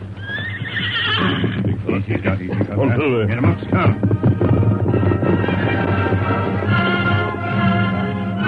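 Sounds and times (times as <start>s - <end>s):
hooves of horses ridden up a coast trail: 0.0s - 8.4s
horse whinny: 0.1s - 1.8s.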